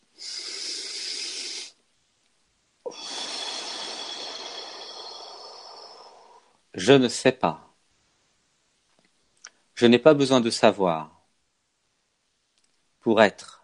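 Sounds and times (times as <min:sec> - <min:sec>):
slow deep breathing: 0:00.1 - 0:01.8, 0:02.8 - 0:06.7
speech: 0:06.8 - 0:07.6, 0:09.8 - 0:11.2, 0:13.0 - 0:13.6.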